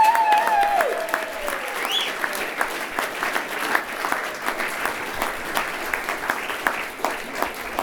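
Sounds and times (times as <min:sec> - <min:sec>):
people cheering: 0:00.0 - 0:05.3
audience at a live bluegrass show applauding: 0:00.0 - 0:07.8
shrill whistle: 0:01.8 - 0:02.3.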